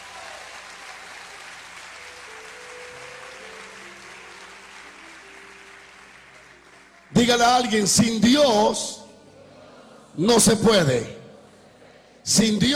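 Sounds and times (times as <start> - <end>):
audience applauding: 0.0 - 8.7
speech: 7.2 - 9.0, 10.2 - 11.2, 12.2 - 12.7.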